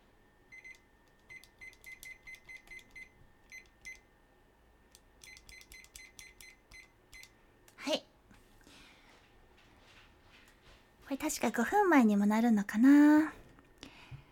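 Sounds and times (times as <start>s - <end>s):
kitchen timer beeping while being set: 0.5s - 4.1s, 5.2s - 7.4s
speech: 11.2s - 13.4s.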